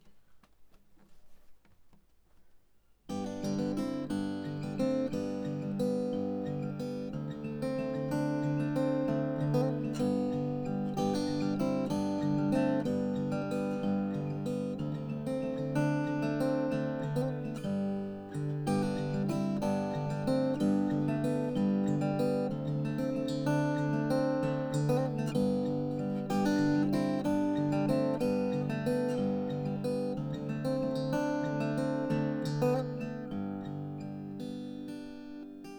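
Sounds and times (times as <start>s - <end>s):
acoustic guitar arpeggio: 3.1s - 35.7s.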